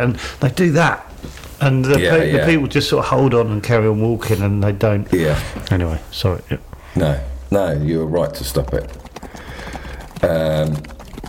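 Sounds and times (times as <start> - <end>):
speech: 0.0 - 9.1, 10.2 - 10.9
horses' hooves clip-clopping: 8.3 - 11.2.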